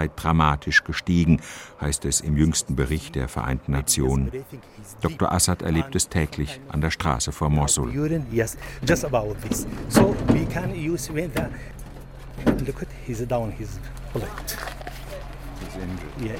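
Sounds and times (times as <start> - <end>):
speech: 0.0 - 11.8, 12.4 - 14.8, 15.8 - 16.3
delivery van engine humming as it pulls up on a road: 0.0 - 16.3
several voices talking urgently: 0.0 - 16.3
delivery van door clunking and rattling as it is yanked open: 8.8 - 12.8.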